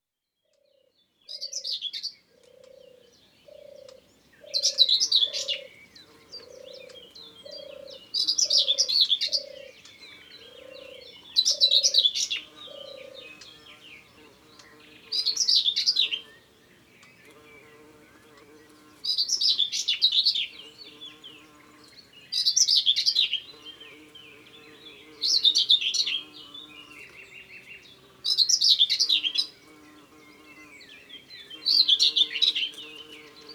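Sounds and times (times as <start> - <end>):
common whitethroat singing in Ardeche: 1.0 - 33.5.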